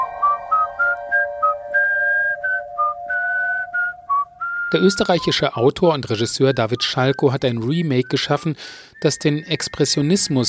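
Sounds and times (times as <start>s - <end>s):
faint continuous humming tone: 0.0s - 4.6s
person whistling a melody: 0.0s - 5.4s, 6.2s - 10.4s
speech: 4.7s - 10.4s.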